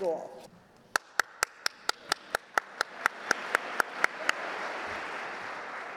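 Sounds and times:
girl clapping at a speech contest: 0.9s - 5.9s
crowd applause: 1.9s - 5.9s.

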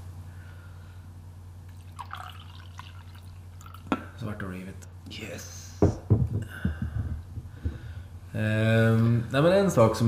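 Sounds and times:
steady low hum: 0.0s - 10.0s
coffee poured into a cup: 1.7s - 4.0s
speech: 4.2s - 6.7s, 8.4s - 10.0s.

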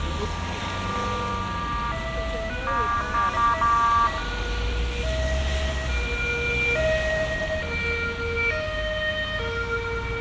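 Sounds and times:
ambulance engine and road rumble: 0.0s - 10.2s
passing ambulance two-tone siren: 0.0s - 10.2s.

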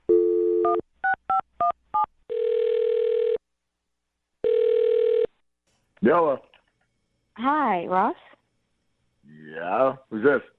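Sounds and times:
dial tone: 0.1s - 0.8s, 2.3s - 3.4s, 4.4s - 5.3s
speech: 6.0s - 6.5s, 7.4s - 8.3s, 9.6s - 10.5s.

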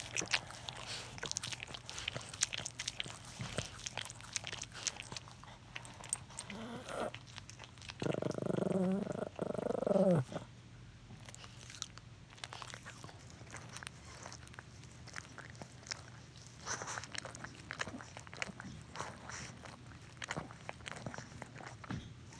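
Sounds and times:
dogs licking and grooming each other: 0.0s - 9.4s, 11.1s - 22.3s.

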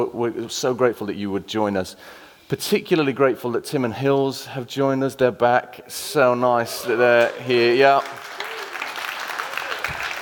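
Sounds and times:
speech: 0.0s - 8.3s
audience applause welcoming returning guests: 6.8s - 10.2s.

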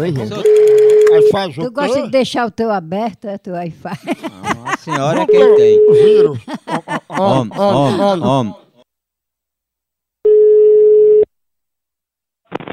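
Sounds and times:
laughter: 0.0s - 0.9s, 3.9s - 8.8s
speech: 0.0s - 8.6s
telephone call ringing on the line: 0.4s - 1.4s, 5.3s - 6.3s, 10.3s - 11.3s.

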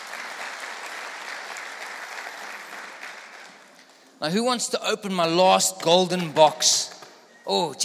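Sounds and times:
audience clapping: 0.0s - 4.2s
speech: 4.2s - 7.8s.

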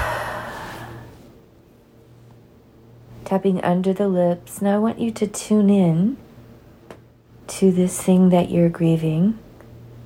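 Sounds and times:
big deep breath during a guided tapping exercise: 0.0s - 1.2s
speech: 3.3s - 6.2s, 7.5s - 9.4s.

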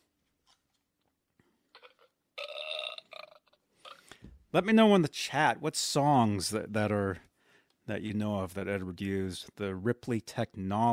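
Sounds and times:
loud raspy burp: 1.8s - 4.1s
speech: 4.5s - 7.3s, 7.9s - 10.9s.

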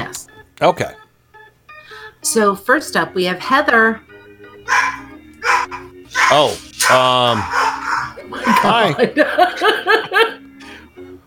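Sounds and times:
speech: 0.6s - 1.0s, 2.2s - 4.1s, 6.3s - 7.6s, 8.3s - 10.4s
dog barking: 4.7s - 9.0s
laughter: 4.7s - 10.8s.

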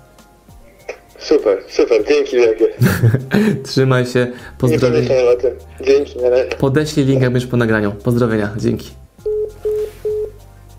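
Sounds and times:
speech: 1.3s - 9.0s
laughter: 2.6s - 3.7s
telephone keypad tones as a phone number is dialed: 9.3s - 10.4s.

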